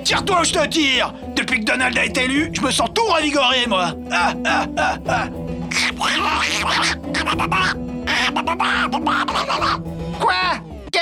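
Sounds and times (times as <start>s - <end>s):
speech: 0.1s - 10.7s
loud voice imitating a duck quacking: 4.5s - 9.9s.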